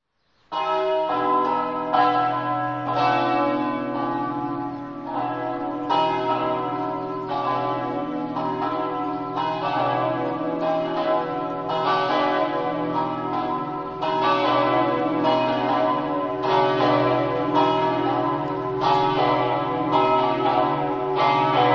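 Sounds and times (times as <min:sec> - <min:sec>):
church bells ringing in Sedegliano: 0:00.5 - 0:21.7.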